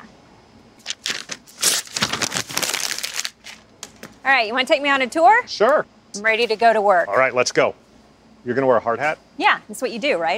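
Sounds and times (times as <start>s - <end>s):
paper being crumpled: 0.8s - 3.7s
speech: 4.2s - 7.8s, 8.4s - 10.3s.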